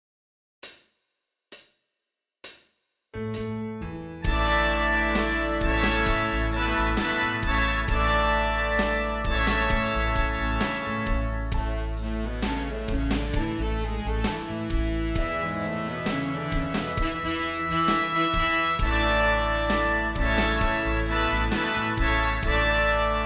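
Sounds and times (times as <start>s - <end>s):
horns playing in fifths: 4.3s - 23.2s.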